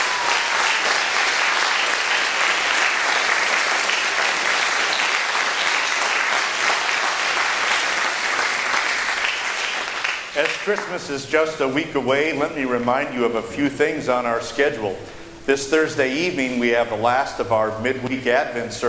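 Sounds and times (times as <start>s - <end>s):
audience applause: 0.0s - 10.9s
speech: 10.4s - 18.8s.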